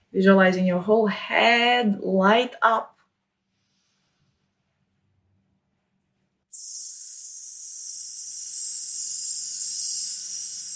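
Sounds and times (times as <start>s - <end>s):
speech: 0.1s - 3.0s
long steady hissing breath: 6.5s - 10.7s.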